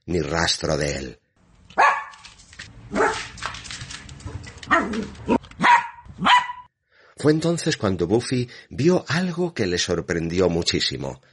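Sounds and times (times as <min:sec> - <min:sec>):
speech: 0:00.1 - 0:01.2, 0:04.8 - 0:05.4, 0:07.2 - 0:11.3
dog barking with yelping: 0:01.8 - 0:02.2, 0:02.9 - 0:03.3, 0:04.7 - 0:06.7.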